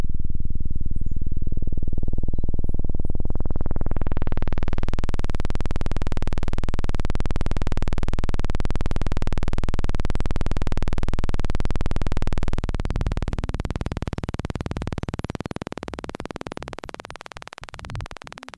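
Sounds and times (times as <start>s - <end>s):
ambient noise glitch: 0.2s - 18.5s.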